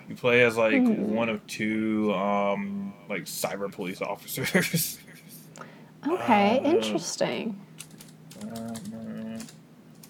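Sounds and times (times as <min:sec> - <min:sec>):
speech: 0:00.1 - 0:07.7
typing on a computer keyboard: 0:07.8 - 0:10.0.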